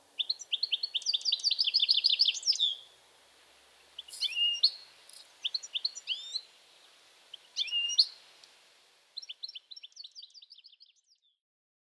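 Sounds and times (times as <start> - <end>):
European goldfinch Carduelis carduelis softly chattering: 0.0 - 9.4
faint hiss: 0.0 - 10.3.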